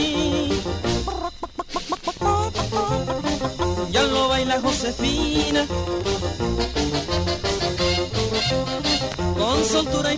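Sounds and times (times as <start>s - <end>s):
Spanish-language song with musical backing: 0.0s - 10.1s
hen clucking: 0.3s - 4.3s
speech: 4.5s - 7.2s.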